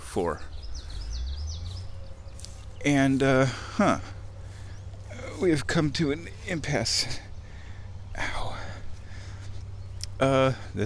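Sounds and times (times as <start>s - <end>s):
bird chirping: 0.0s - 10.8s
low outdoor rumble: 0.0s - 10.8s
speech: 0.2s - 0.6s, 2.8s - 4.2s, 5.4s - 7.3s, 10.2s - 10.8s.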